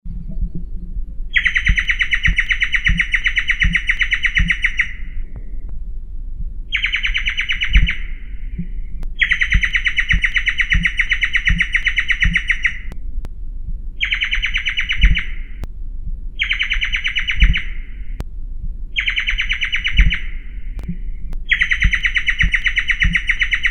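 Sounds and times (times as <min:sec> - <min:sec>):
giant antshrike calling: 0:00.2 - 0:05.2, 0:06.7 - 0:12.9, 0:14.0 - 0:15.6, 0:16.4 - 0:18.2, 0:19.0 - 0:20.8, 0:21.5 - 0:23.7.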